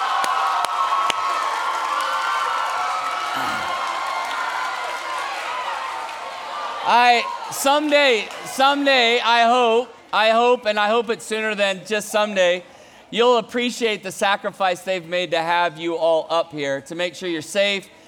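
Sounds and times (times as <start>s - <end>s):
large crowd applauding and cheering: 0.0s - 9.1s
speech: 6.9s - 18.0s.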